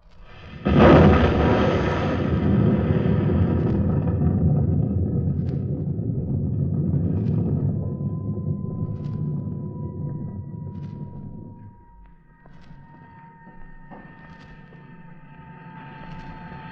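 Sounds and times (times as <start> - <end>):
explosion: 0.2 - 11.8
deep rumbling roar: 0.4 - 11.6.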